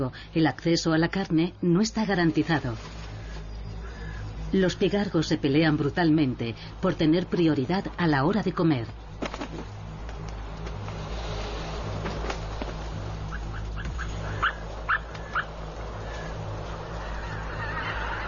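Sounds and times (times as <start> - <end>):
speech: 0.0 - 3.0, 4.5 - 9.8
constant low rumble: 0.0 - 18.2
geese honking: 13.2 - 18.2.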